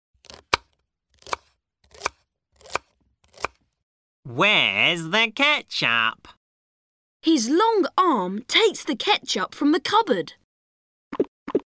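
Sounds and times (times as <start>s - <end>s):
small robot hand cutting meat with a knife: 0.2s - 3.6s
speech: 4.3s - 6.4s, 7.2s - 10.4s.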